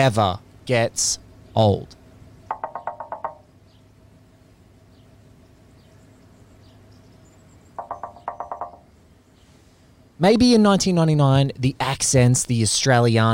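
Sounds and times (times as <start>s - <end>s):
speech: 0.0s - 2.0s, 10.2s - 13.3s
low hum: 0.0s - 13.3s
knocking on a car window: 2.5s - 3.4s, 7.8s - 8.8s.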